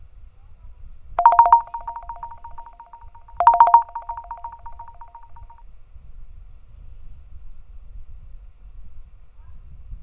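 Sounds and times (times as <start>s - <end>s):
phone ringtone: 1.2s - 5.6s.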